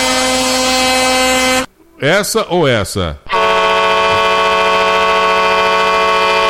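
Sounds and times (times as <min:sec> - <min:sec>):
deep truck air horn blasts: 0:00.0 - 0:01.7, 0:03.3 - 0:06.4
speech: 0:02.0 - 0:03.5.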